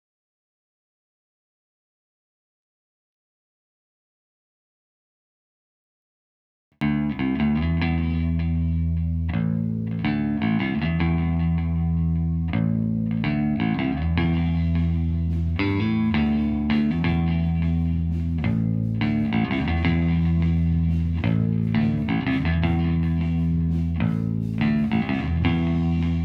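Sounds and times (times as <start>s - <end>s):
mono bass through guitar amp recorded with ribbon microphone: 6.8s - 26.2s.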